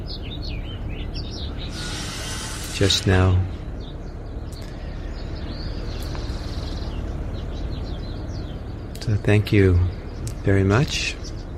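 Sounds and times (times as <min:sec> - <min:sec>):
birds whistling and singing: 0:00.0 - 0:11.5
speech: 0:02.8 - 0:03.5, 0:09.1 - 0:11.2.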